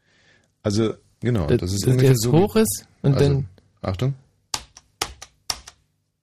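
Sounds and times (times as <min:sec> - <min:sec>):
speech: 0:00.6 - 0:04.2
crisp keystrokes on a computer keyboard: 0:04.5 - 0:05.8.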